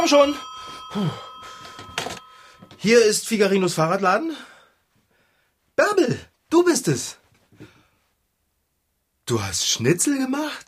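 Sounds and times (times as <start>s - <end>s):
speech: 0.0s - 1.3s, 2.8s - 4.5s, 5.8s - 7.7s, 9.3s - 10.6s
telephone ringing in a bicycle shop: 0.0s - 3.5s.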